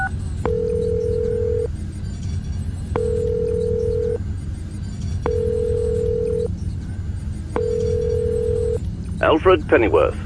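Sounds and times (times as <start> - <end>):
cell phone call electronic ringback tone: 0.0 - 1.7, 3.0 - 4.2, 5.2 - 6.5, 7.6 - 8.8
low hum: 0.0 - 10.2
speech: 9.3 - 10.2.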